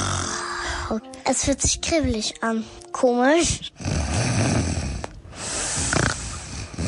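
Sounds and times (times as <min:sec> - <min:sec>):
person making a deliberate rattling snore through the nose: 0:00.0 - 0:00.9, 0:03.7 - 0:06.8
speech: 0:00.9 - 0:04.6.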